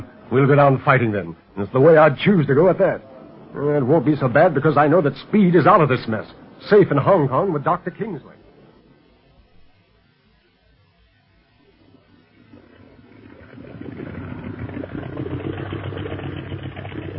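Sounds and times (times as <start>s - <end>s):
speech: 0.3s - 8.4s
speedboat engine roaring at about 50 miles an hour: 13.3s - 17.1s.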